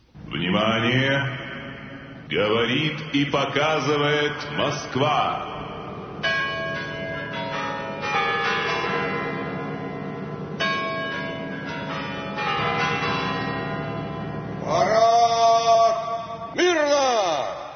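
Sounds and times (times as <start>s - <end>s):
speech: 0.6s - 1.4s, 2.3s - 5.6s
bells of a Kremlin tower ringing in Moscow at a military parade: 5.1s - 16.7s.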